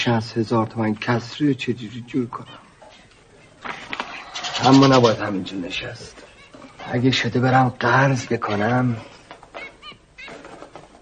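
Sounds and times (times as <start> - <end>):
speech: 0.0 - 2.6, 4.6 - 6.3, 6.9 - 9.1
canary chirping: 4.1 - 5.3.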